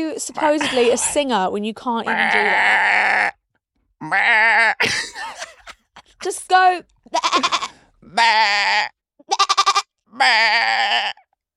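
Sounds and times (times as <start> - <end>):
speech: 0.0 - 3.3, 4.0 - 5.5, 6.2 - 9.6, 10.2 - 11.2
laughter: 0.4 - 1.2, 4.8 - 6.4, 7.3 - 7.7
person imitating a goat bleating: 2.1 - 3.4, 4.0 - 4.8, 7.1 - 11.3.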